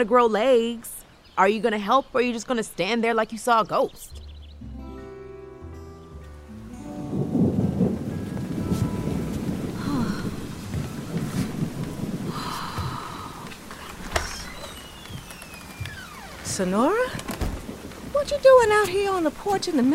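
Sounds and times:
speech: 0.0 - 4.2, 16.6 - 17.2, 18.2 - 19.9
heavy rain pouring down: 6.5 - 19.9
low thunder rumbling and rolling: 6.6 - 19.9.

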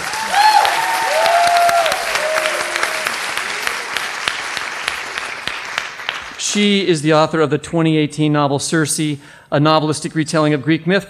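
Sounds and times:
crowd applauding to welcome a guest author: 0.0 - 6.7
speech: 6.6 - 11.0.

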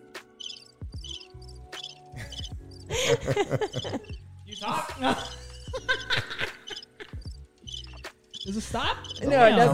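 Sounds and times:
crickets chirping: 0.2 - 9.3
laughter: 2.2 - 7.2
speech: 3.1 - 4.0, 5.0 - 5.4, 8.6 - 9.7.

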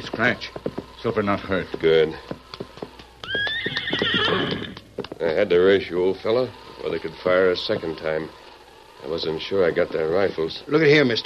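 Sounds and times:
speech: 0.0 - 2.4, 5.2 - 8.4, 9.0 - 11.2
horse hooves clopping: 0.0 - 11.2
horse whinnying: 3.2 - 5.0.

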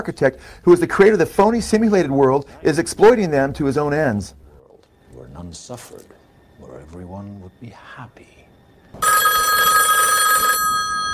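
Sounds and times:
speech: 0.0 - 4.4, 5.4 - 9.8
telephone ringing: 9.0 - 11.1.

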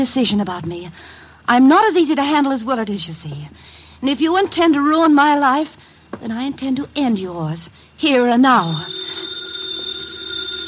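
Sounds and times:
speech: 0.0 - 9.1
telephone bell ringing: 8.4 - 10.6.

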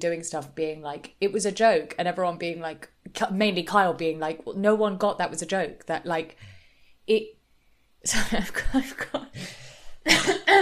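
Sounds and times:
speech: 0.0 - 6.5, 7.1 - 7.4, 8.0 - 10.5
harsh phlegmy coughs with throaty clearing: 10.1 - 10.5.

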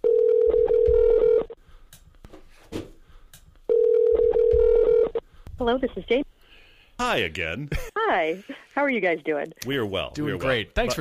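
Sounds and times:
telephone ringback tone through a phone line: 0.0 - 1.5, 3.7 - 5.2
speech: 5.6 - 6.2, 7.1 - 10.9.

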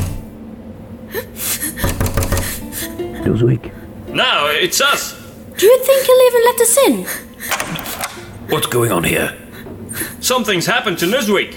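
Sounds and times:
knocking on a wooden door: 1.8 - 2.6
speech: 3.2 - 7.7, 8.5 - 9.4, 10.0 - 11.5.

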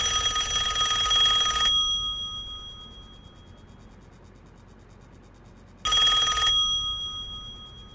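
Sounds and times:
telephone bell ringing: 0.0 - 3.6, 5.9 - 7.9.

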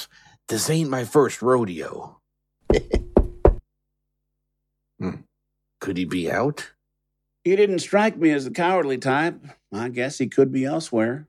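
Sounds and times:
speech: 0.5 - 3.0, 5.8 - 6.8, 7.4 - 11.2
knocking on a door: 2.7 - 3.6.

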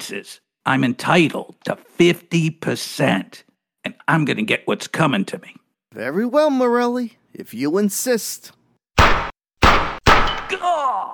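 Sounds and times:
speech: 0.0 - 8.6
gunshots in a gangster shootout: 9.0 - 10.6.

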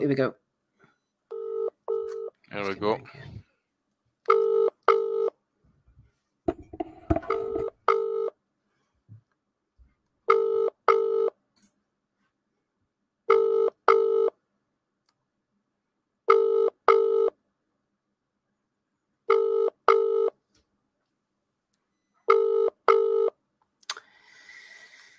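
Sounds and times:
speech: 0.0 - 0.4, 2.5 - 3.4
phone ringback tone of unanswered outgoing call: 1.3 - 2.3, 4.3 - 5.3, 6.8 - 8.3, 10.3 - 11.3, 13.3 - 14.3, 16.3 - 17.3, 19.3 - 20.3, 22.3 - 23.3
rustling and handling noise: 6.5 - 7.7.

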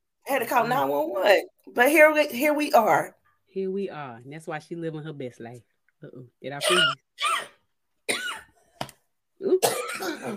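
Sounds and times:
speech: 0.4 - 7.4, 9.4 - 10.3
person coughing harshly: 6.6 - 8.6, 9.5 - 10.3.

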